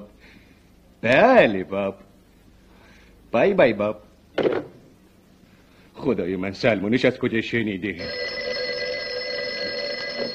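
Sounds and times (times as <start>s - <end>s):
speech: 1.0s - 2.1s, 3.3s - 4.7s, 6.0s - 8.4s
telephone ringing: 8.0s - 10.3s.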